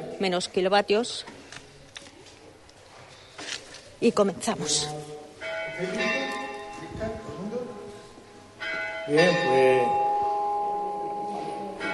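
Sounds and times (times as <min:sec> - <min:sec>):
speech: 0:00.2 - 0:01.4, 0:04.0 - 0:05.2, 0:05.8 - 0:06.2, 0:09.1 - 0:10.0
bell ringing: 0:05.4 - 0:11.9.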